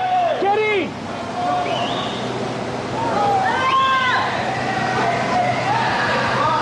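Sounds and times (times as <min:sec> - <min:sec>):
voices shouting and calling out: 0:00.0 - 0:00.4, 0:01.2 - 0:02.3, 0:03.0 - 0:06.6
roar of rushing water as a tsunami wave surges back in: 0:00.0 - 0:06.6.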